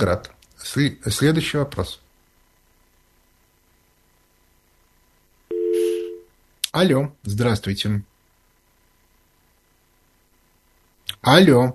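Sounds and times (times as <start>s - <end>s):
speech: 0.0s - 2.0s, 6.8s - 8.1s, 11.2s - 11.7s
telephone busy tone on a call that fails to connect: 5.5s - 6.3s.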